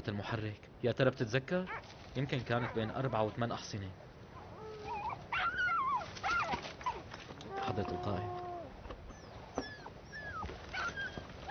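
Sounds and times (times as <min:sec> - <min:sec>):
speech: 0:00.0 - 0:04.0, 0:07.7 - 0:08.4
dog whimpering outside a tent: 0:04.4 - 0:11.4.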